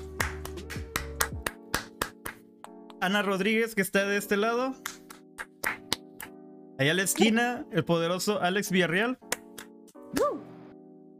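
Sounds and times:
sparse handclaps from a small group: 0:00.0 - 0:03.2, 0:04.8 - 0:06.4, 0:09.2 - 0:10.0
speech: 0:03.0 - 0:04.9, 0:06.8 - 0:09.3.

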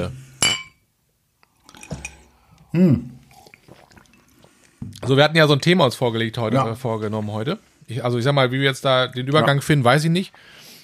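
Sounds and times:
speech: 0:00.0 - 0:00.2, 0:02.7 - 0:03.1, 0:05.1 - 0:10.6
drinking glasses clinking in a toast: 0:00.4 - 0:00.8, 0:01.7 - 0:02.3
faint sloshing of glassware: 0:01.7 - 0:02.3, 0:03.2 - 0:05.1.

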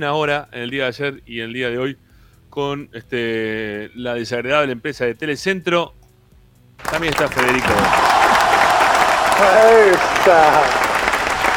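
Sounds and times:
speech: 0:00.0 - 0:06.0, 0:06.8 - 0:08.1, 0:09.4 - 0:10.8
applause from a small group: 0:06.8 - 0:11.5.

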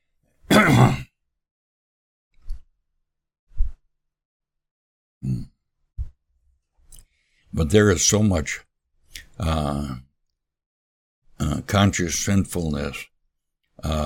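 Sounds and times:
loud rasping throat clearing: 0:00.5 - 0:01.1, 0:05.2 - 0:05.6
speech: 0:00.7 - 0:01.0, 0:07.6 - 0:08.7, 0:09.4 - 0:10.0, 0:11.4 - 0:13.1, 0:13.8 - 0:14.0.

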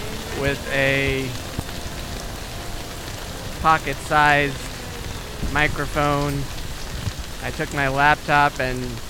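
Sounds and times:
rain on a tarp garage during a thunderstorm: 0:00.0 - 0:09.0
speech: 0:00.4 - 0:01.5, 0:03.6 - 0:04.7, 0:05.4 - 0:06.5, 0:07.4 - 0:09.0.

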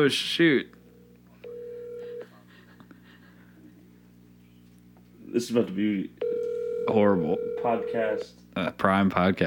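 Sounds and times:
speech: 0:00.0 - 0:00.8, 0:05.3 - 0:06.2, 0:06.9 - 0:09.4
faint low hum: 0:00.0 - 0:09.4
electronic phone tone from an incoming call: 0:00.9 - 0:02.2, 0:06.2 - 0:08.2.

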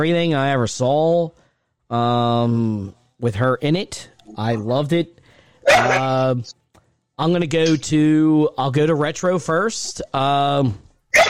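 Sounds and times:
speech: 0:00.0 - 0:06.6, 0:07.2 - 0:11.2
dog barking with a strained whine: 0:05.6 - 0:06.2.

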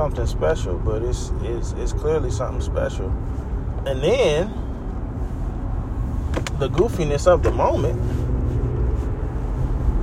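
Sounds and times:
speech: 0:00.0 - 0:04.7, 0:06.6 - 0:08.3
road noise from heavy traffic heard from inside a car: 0:00.0 - 0:10.0.

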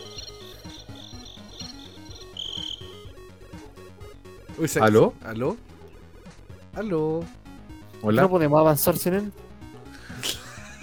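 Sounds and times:
crickets chirping in a dense chorus: 0:00.0 - 0:03.0
speech: 0:04.6 - 0:05.7, 0:06.8 - 0:07.4, 0:08.0 - 0:09.4.

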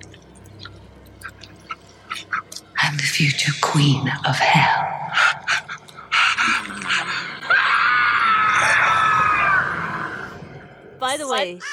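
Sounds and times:
speech: 0:03.2 - 0:05.2, 0:11.1 - 0:11.7
person screaming with high-pitched cries: 0:06.4 - 0:10.2.

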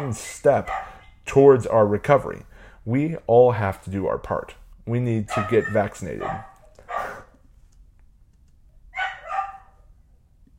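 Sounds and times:
speech: 0:00.0 - 0:06.5
dogs barking while playing: 0:00.5 - 0:01.2, 0:05.3 - 0:07.3, 0:09.0 - 0:09.9.

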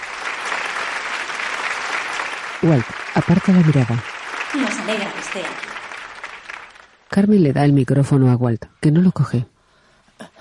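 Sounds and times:
large audience applauding in a gymnasium: 0:00.0 - 0:07.0
speech: 0:02.6 - 0:05.7, 0:07.2 - 0:09.5.

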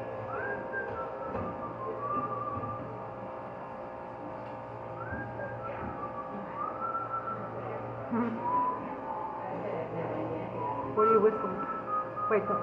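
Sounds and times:
steady low hum: 0:00.0 - 0:12.6
person whistling a melody in short wavering notes: 0:00.3 - 0:03.0, 0:05.0 - 0:07.5, 0:08.2 - 0:09.4, 0:10.6 - 0:12.6
speech: 0:12.3 - 0:12.6.

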